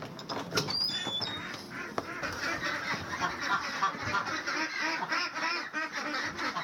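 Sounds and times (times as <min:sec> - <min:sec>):
high bird chirps: 0:00.7 - 0:01.6
flock of pastured egg ducks quacking at morning feeding on a ranch: 0:01.0 - 0:06.6.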